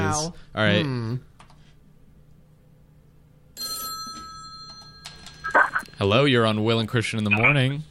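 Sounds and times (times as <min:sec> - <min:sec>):
speech: 0:00.1 - 0:01.3, 0:06.0 - 0:07.8
telephone ringing with a bright electronic bell tone for an incoming call: 0:03.6 - 0:06.0.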